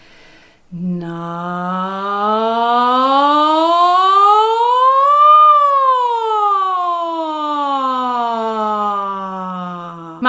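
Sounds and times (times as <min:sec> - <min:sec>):
deep belly breath: 0:00.0 - 0:00.8
speech: 0:00.7 - 0:01.7
voice singing a sliding vocal warm-up exercise: 0:00.7 - 0:10.2.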